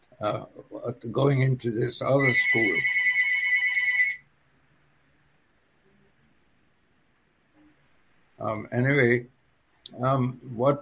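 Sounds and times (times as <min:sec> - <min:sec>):
speech: 0:00.2 - 0:03.0, 0:08.4 - 0:10.7
telephone ringing with an electronic trill: 0:02.2 - 0:04.2.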